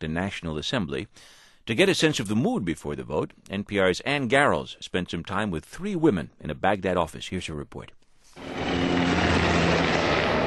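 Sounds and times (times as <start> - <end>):
speech: 0.0 - 8.6
US military helicopters flying over central Baghdad after a car bombing: 8.4 - 10.4.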